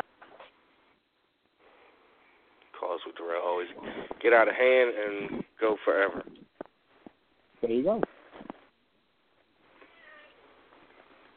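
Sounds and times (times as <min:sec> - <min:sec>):
speech: 0:03.0 - 0:06.4, 0:07.6 - 0:08.1
cat meowing: 0:09.8 - 0:10.5.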